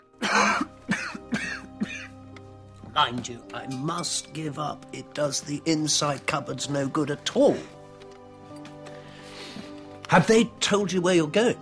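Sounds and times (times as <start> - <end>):
man coughing after lighting a cigarette: 0.2 - 2.2
speech: 3.0 - 7.8, 10.1 - 11.6.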